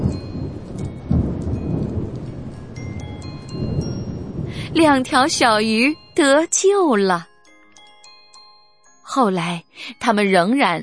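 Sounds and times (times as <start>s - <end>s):
steady rain: 0.0s - 6.0s
deep thunder rolling: 0.0s - 6.2s
speech: 4.7s - 7.3s, 9.1s - 10.8s.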